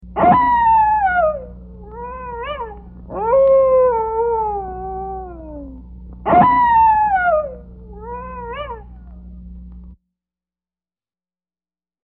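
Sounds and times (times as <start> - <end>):
low steady hum: 0.0 - 10.0
coyote howling and yipping: 0.2 - 9.2.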